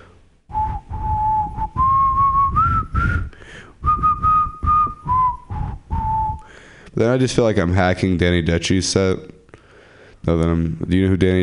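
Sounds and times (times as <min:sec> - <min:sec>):
person whistling a short wavering tune: 0:00.5 - 0:06.5
speech: 0:07.0 - 0:09.3, 0:10.3 - 0:11.4.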